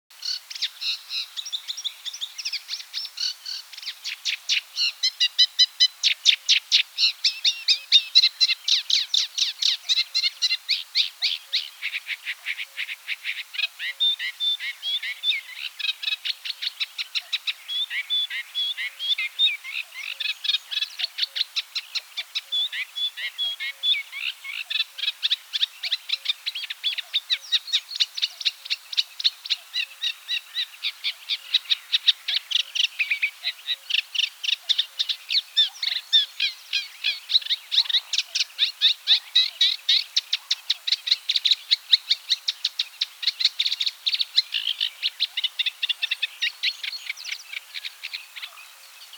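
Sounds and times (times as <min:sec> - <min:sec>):
Eurasian reed warbler Acrocephalus scirpaceus singing: 0:00.1 - 0:49.1.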